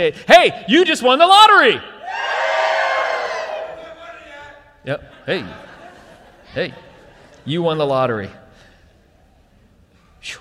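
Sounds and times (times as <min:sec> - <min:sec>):
speech: 0:00.0 - 0:02.4, 0:04.8 - 0:05.7, 0:06.6 - 0:08.4
audience cheering and shouting: 0:02.0 - 0:04.4
laughter: 0:03.8 - 0:08.2.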